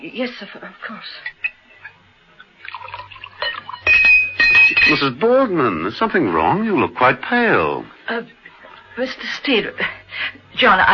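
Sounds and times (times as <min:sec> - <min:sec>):
speech: 0:00.0 - 0:01.4, 0:04.9 - 0:08.4, 0:09.0 - 0:10.9
low steady hum: 0:00.0 - 0:10.9
brandy being poured into a glass: 0:02.6 - 0:04.6
faint glassy ring: 0:02.8 - 0:05.1.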